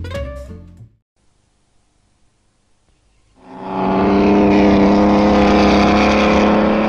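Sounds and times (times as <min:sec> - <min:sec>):
1920s racing car engines revving hard: 0:03.4 - 0:06.8.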